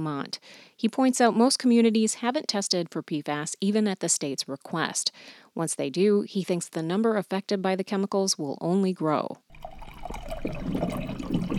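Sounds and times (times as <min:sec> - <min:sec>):
speech: 0:00.0 - 0:09.4, 0:10.1 - 0:11.5
water pouring into a glass from a water dispenser: 0:09.5 - 0:11.5.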